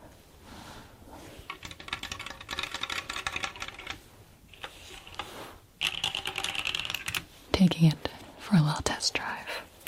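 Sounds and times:
keys clacking on a Drop Sense 75 mechanical keyboard during a typing warm-up: 1.5 - 4.0, 5.8 - 7.3
speech: 7.6 - 9.5.

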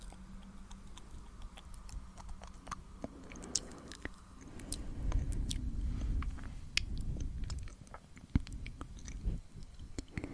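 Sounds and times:
breathy mouth sounds with wet clicks and smacks: 0.0 - 10.3
soft low hum: 0.0 - 10.3.

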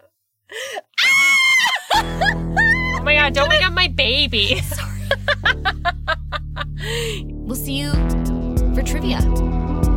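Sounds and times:
people screaming in celebration at finishing a season: 1.0 - 3.0
laughter: 1.6 - 7.2
speech: 3.2 - 5.7, 6.6 - 9.9.

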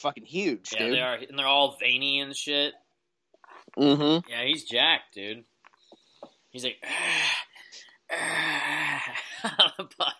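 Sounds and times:
speech: 0.0 - 2.8, 3.7 - 5.5, 6.5 - 7.5, 8.1 - 10.1
person imitating heavy breathing: 6.8 - 9.2.

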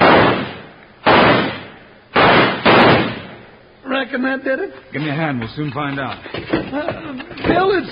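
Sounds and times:
gunshots blasting a locked door's lock loose: 0.0 - 3.6
speech: 4.0 - 7.8.

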